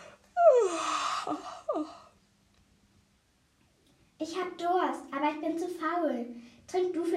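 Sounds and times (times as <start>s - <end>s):
drawn-out breathy yawn from a single voice: 0.0s - 2.2s
speech: 4.4s - 7.1s.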